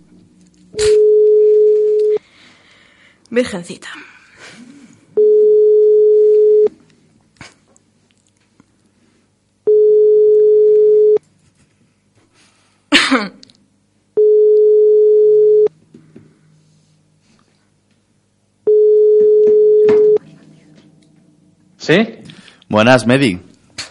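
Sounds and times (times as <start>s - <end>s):
speech: 0.7s - 1.0s, 3.3s - 4.6s, 21.9s - 23.5s
telephone ringing tone while placing a call: 0.8s - 2.2s, 5.2s - 6.7s, 9.7s - 11.2s, 14.2s - 15.7s, 18.7s - 20.2s.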